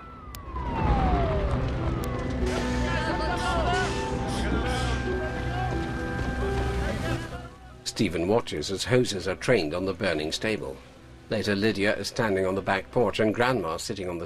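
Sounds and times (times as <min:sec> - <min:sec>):
fire engine sirens wailing: 0:00.0 - 0:07.9
heavy fire engine engines rumbling: 0:01.2 - 0:07.8
people shouting and commotion: 0:02.5 - 0:06.1
speech: 0:08.0 - 0:14.2.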